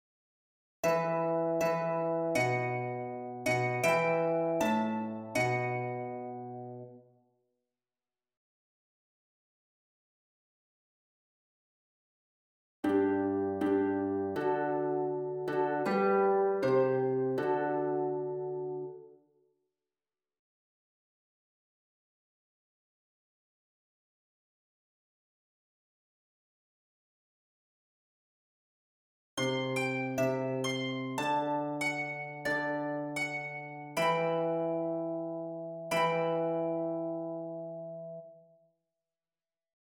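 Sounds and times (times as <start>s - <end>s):
harp: 0.8s - 6.9s, 12.9s - 19.0s, 29.4s - 38.2s.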